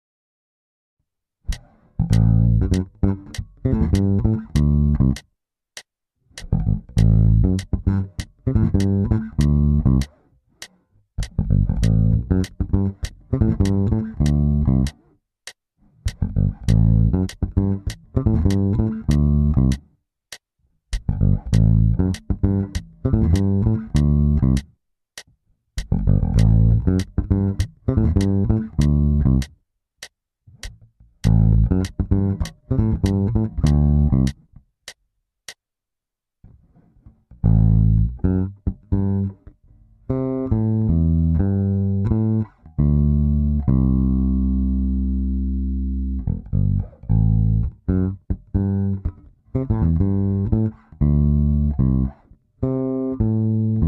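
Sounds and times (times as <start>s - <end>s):
bass line in A with triplet raking: 1.5s - 5.3s, 6.3s - 10.2s, 11.2s - 15.1s, 16.0s - 19.9s, 20.9s - 24.7s, 25.8s - 29.6s, 30.6s - 34.4s, 37.4s - 39.5s, 40.1s - 53.8s.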